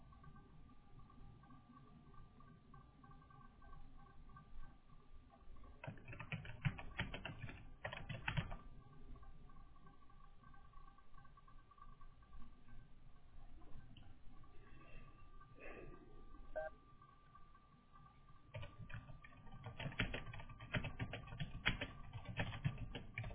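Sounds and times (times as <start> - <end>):
typing a name on a computer keyboard: 5.8 - 8.6, 18.5 - 23.3.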